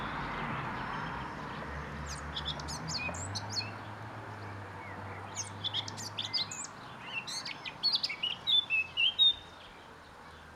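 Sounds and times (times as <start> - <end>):
Eurasian blackcap Sylvia atricapilla song: 0.0 - 10.5.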